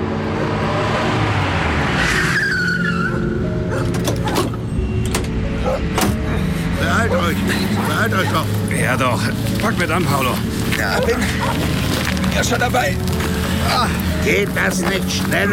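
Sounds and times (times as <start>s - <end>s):
sharp rising and falling tones: 0.0s - 7.2s
approaching car engine and road noise: 0.0s - 15.5s
car tires squealing and skidding: 0.0s - 15.5s
speech: 7.4s - 15.5s.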